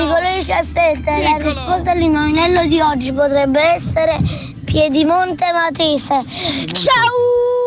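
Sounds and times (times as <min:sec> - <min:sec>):
laughter: 0:00.0 - 0:00.4, 0:01.1 - 0:02.4
speech: 0:00.0 - 0:07.5
puppies howling in a high-pitched chorus: 0:01.2 - 0:02.2.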